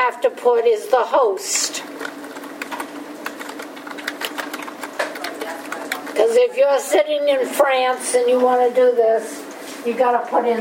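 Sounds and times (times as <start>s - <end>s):
faint hum: 0.0s - 10.5s
speech: 0.1s - 2.1s, 6.2s - 10.5s
quick irregular computer keyboard typing: 2.0s - 6.4s.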